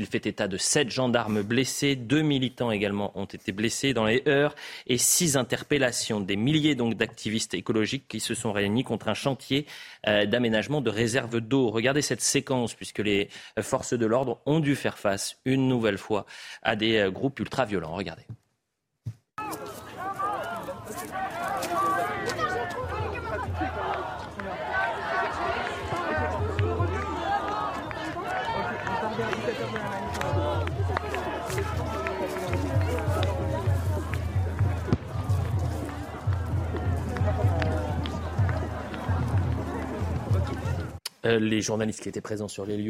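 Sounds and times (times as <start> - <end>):
speech: 0.0 - 18.4, 41.2 - 42.8
large protest crowd chanting a slogan: 19.4 - 41.0
general commotion: 19.4 - 41.2
rhythmic low thuds: 22.3 - 41.0.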